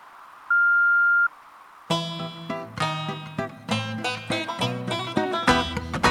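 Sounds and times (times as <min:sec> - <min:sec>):
voicemail electronic beep tone: 0:00.5 - 0:01.3
lively music: 0:01.9 - 0:06.0.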